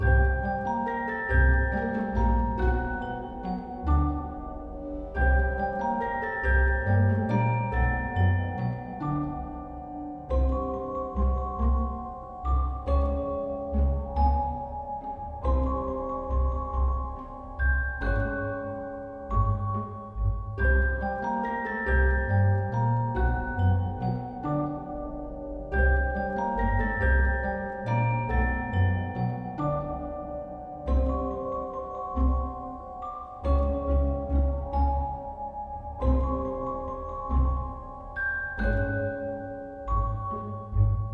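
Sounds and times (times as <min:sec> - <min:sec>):
intensity 3 music: 0:00.0 - 0:41.1.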